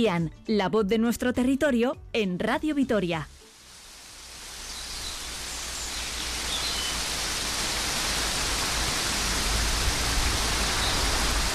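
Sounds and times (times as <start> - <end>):
speech: 0.0 - 3.3
steady rain pouring at midday: 3.4 - 11.5.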